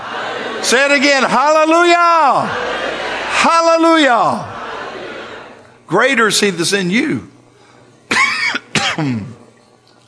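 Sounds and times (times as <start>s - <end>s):
laughter: 0.0s - 5.8s
speech: 0.6s - 4.5s, 5.9s - 7.3s, 9.0s - 9.3s
man coughing during a church service: 8.1s - 9.4s.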